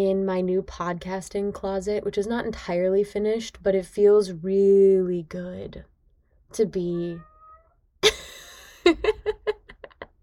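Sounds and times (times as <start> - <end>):
speech: 0.0 - 5.9, 6.5 - 7.3
female cat meowing in a small unfinished closet: 6.9 - 7.8.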